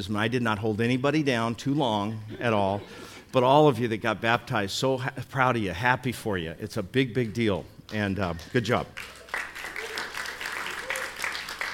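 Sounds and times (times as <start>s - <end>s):
speech: 0.0s - 9.5s
congregation clapping after baptisms at a church service: 7.2s - 11.7s.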